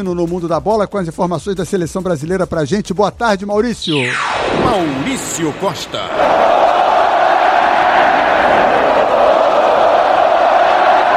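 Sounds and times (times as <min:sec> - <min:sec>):
speech: 0:00.0 - 0:06.6
huge stadium crowd roaring and chanting ole: 0:04.6 - 0:11.1.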